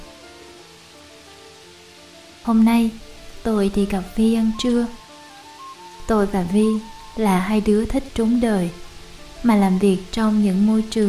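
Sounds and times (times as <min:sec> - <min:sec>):
heavy rain pouring on a tin roof in Saigon Vietnam: 0:00.0 - 0:11.0
speech: 0:02.4 - 0:05.0, 0:06.1 - 0:08.8, 0:09.4 - 0:11.0.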